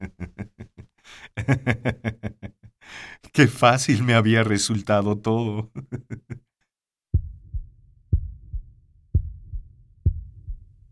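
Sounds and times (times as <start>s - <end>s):
laughter: 0.0s - 2.7s, 5.6s - 6.4s
speech: 1.2s - 2.3s, 3.4s - 5.8s
muffled low heartbeat beneath a heavy mattress: 7.2s - 10.9s.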